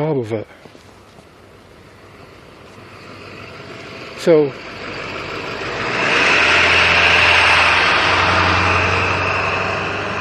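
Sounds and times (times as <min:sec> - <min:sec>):
speech: 0:00.0 - 0:00.8, 0:04.2 - 0:04.7
noisy truck engine idling: 0:01.0 - 0:10.1.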